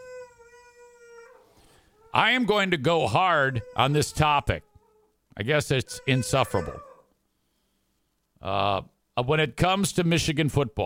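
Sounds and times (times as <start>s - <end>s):
dog howling: 0.0s - 2.2s, 3.0s - 5.1s, 5.9s - 7.1s
speech: 2.2s - 4.7s, 5.4s - 6.9s, 8.4s - 10.8s.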